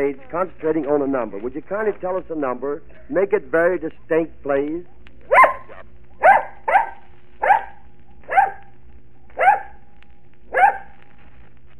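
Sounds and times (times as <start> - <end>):
speech: 0.0 - 5.5
dog on a stage barking: 5.3 - 8.7, 9.4 - 9.9, 10.5 - 11.0.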